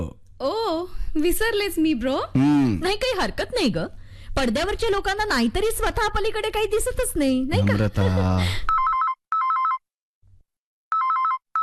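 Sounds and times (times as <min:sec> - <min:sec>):
speech: 0:00.1 - 0:08.7
telephone ringing in a double-ring pattern with electronic trills: 0:08.7 - 0:09.8, 0:10.9 - 0:11.6.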